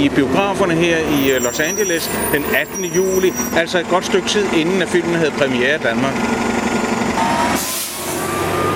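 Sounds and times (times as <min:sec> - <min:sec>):
speech: 0:00.0 - 0:06.5
bus passing in Los Angeles: 0:00.3 - 0:08.7
bus air brakes hissing: 0:01.1 - 0:03.6, 0:07.5 - 0:08.3.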